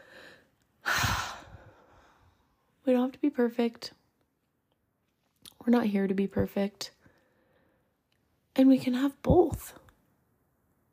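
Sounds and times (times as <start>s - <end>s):
deep breath: 0.0s - 2.7s, 7.0s - 8.0s
speech: 2.9s - 4.0s, 5.6s - 7.0s, 8.6s - 9.8s.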